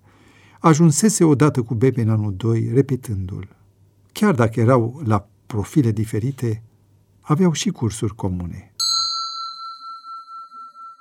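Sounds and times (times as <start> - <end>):
speech: 0.6 - 3.6, 4.2 - 8.7
mobile phone message notification chime: 8.8 - 10.9.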